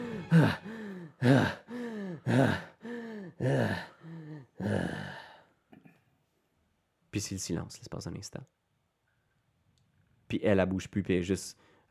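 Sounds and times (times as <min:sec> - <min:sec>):
person imitating breathless panting: 0:00.0 - 0:05.2
speech: 0:00.3 - 0:01.6, 0:07.2 - 0:08.6, 0:10.3 - 0:11.8.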